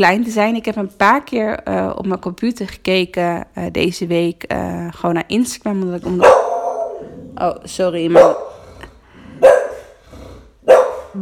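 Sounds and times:
speech: 0:00.0 - 0:06.5, 0:07.4 - 0:08.5
small dog growly rumble: 0:06.1 - 0:11.2
small dog barking with sharp bright yaps: 0:06.2 - 0:07.1, 0:08.1 - 0:08.5, 0:09.4 - 0:09.9, 0:10.6 - 0:11.2.

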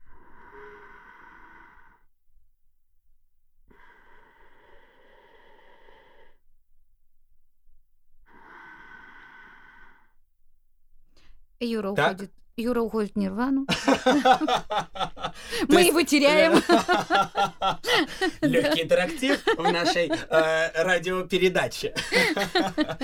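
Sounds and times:
slow paced breathing in a breathing exercise: 0:00.0 - 0:02.1, 0:03.7 - 0:06.4, 0:08.3 - 0:10.2, 0:14.1 - 0:15.7, 0:16.9 - 0:18.5, 0:22.0 - 0:23.0
speech: 0:11.6 - 0:23.0
laughter: 0:13.7 - 0:23.0.

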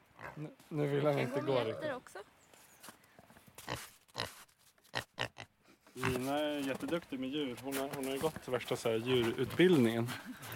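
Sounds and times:
pigs grunting and snorting while being walked: 0:00.0 - 0:00.6, 0:05.0 - 0:06.4
faint outdoor noise: 0:00.0 - 0:10.5
speech: 0:00.4 - 0:02.3, 0:06.0 - 0:10.5.

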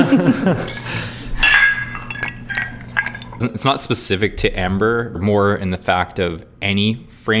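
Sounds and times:
speech: 0:00.0 - 0:01.1, 0:03.4 - 0:07.3
glasses clinking together in a toast: 0:00.6 - 0:03.7.

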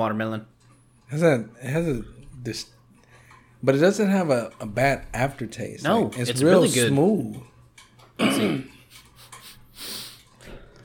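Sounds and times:
speech: 0:00.0 - 0:02.8, 0:03.6 - 0:07.5, 0:08.2 - 0:08.7
person sniffing an alcoholic drink: 0:08.9 - 0:10.3.

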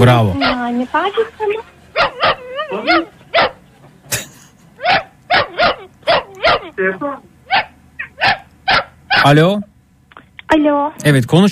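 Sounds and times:
speech: 0:00.0 - 0:03.1, 0:06.8 - 0:07.3, 0:09.2 - 0:09.7, 0:10.5 - 0:11.5
dog whining with high-pitched yips and whimpers: 0:00.3 - 0:03.6, 0:04.8 - 0:09.4.

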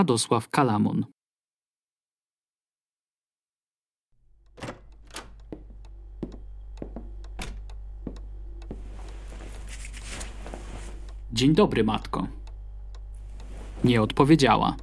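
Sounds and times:
speech: 0:00.0 - 0:01.2, 0:11.4 - 0:12.4, 0:13.8 - 0:14.8
steady low hum: 0:04.2 - 0:14.8
slippers shuffling and scraping across a floor: 0:08.0 - 0:11.2, 0:13.3 - 0:14.3.

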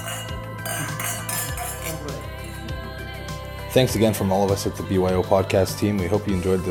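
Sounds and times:
wine glasses clinking in a toast in a dining room: 0:00.0 - 0:03.5
speech: 0:03.7 - 0:06.7.

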